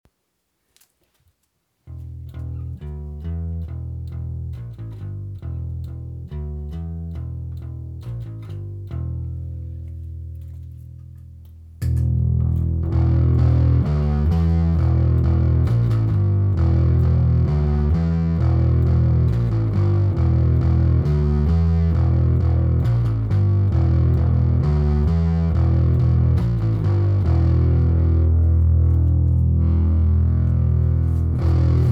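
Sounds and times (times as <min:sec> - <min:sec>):
guitar with Krampus P pickup: 0:01.9 - 0:31.9.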